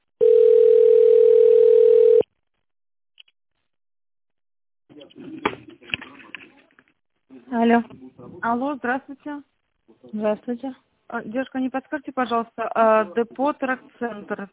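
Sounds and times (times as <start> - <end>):
telephone ringback tone: 0.2 - 2.2
speech: 7.5 - 14.5.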